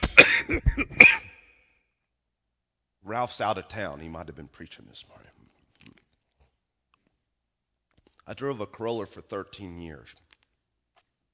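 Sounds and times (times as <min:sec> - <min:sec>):
person coughing with throat-clearing: 0:00.0 - 0:01.5
throat clearing: 0:00.0 - 0:01.5
speech: 0:00.2 - 0:00.9, 0:03.1 - 0:05.4, 0:08.3 - 0:10.2.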